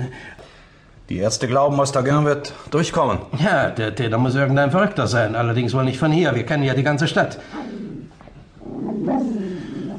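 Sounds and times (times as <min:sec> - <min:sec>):
speech: 0:01.1 - 0:07.8
yellow dog growling: 0:07.4 - 0:09.9.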